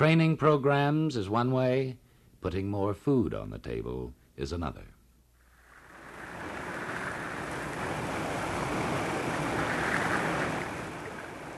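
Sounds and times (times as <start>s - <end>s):
speech: 0.0s - 4.9s
river water flowing: 5.5s - 11.5s.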